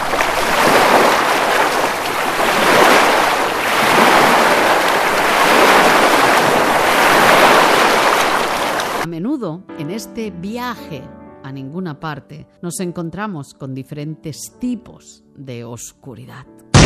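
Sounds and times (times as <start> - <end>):
sea waves washing around a sailing boat: 0.0 - 9.1
speech: 10.0 - 16.7.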